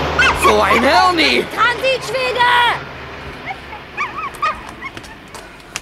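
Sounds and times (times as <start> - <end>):
laughter: 0.2 - 5.5
speech: 0.6 - 2.6
small injured dog with hurt left hind paw whimpering: 3.4 - 5.4.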